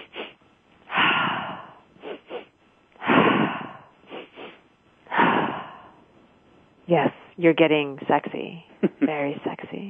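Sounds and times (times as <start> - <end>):
person sniffing two quick inhales through the nose: 0.0 - 5.8
person exhaling breathily out the mouth: 0.9 - 5.9
speech: 6.9 - 9.8.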